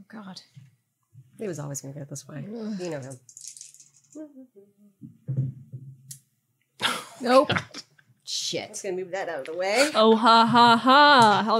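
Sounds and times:
speech: 0.1s - 0.8s, 1.4s - 3.4s, 4.1s - 5.7s, 7.2s - 11.5s
dice rattling and clattering across a tabletop: 3.0s - 4.2s.

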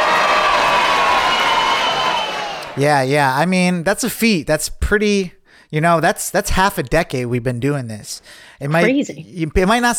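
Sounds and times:
applause: 0.0s - 2.8s
crowd cheering: 0.0s - 3.1s
speech: 2.8s - 9.9s.

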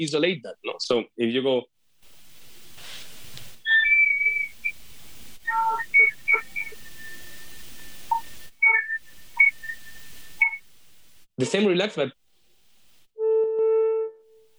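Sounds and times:
speech: 0.0s - 1.7s, 11.4s - 12.2s
blown whistle tones, thin high pure tones: 3.6s - 10.7s, 13.2s - 14.4s.

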